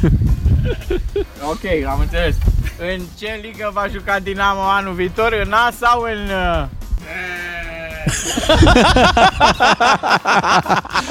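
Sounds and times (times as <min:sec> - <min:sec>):
laughter: 0:00.0 - 0:01.6, 0:08.0 - 0:11.0
speech: 0:00.0 - 0:11.0
people talking rapidly: 0:01.3 - 0:06.8
sheep bleating loudly: 0:07.0 - 0:08.2.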